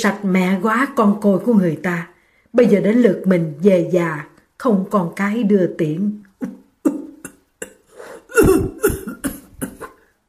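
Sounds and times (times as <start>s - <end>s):
speech: 0.0s - 7.0s
elderly man coughing violently: 7.6s - 10.0s.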